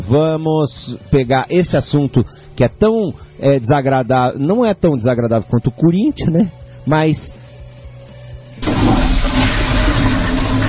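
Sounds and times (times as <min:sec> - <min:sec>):
speech: 0:00.1 - 0:07.4
toilet flushing: 0:08.6 - 0:10.6.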